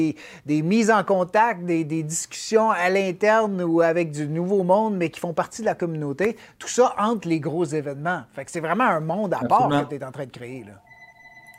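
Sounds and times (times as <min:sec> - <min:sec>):
speech: 0:00.0 - 0:10.8
phone ringing: 0:10.7 - 0:11.5.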